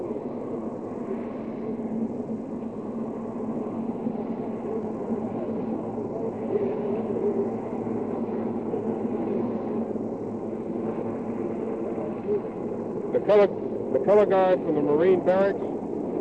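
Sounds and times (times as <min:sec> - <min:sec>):
recovery helicopter engine and rotor rumble: 0:00.0 - 0:16.2
speech: 0:13.3 - 0:15.7.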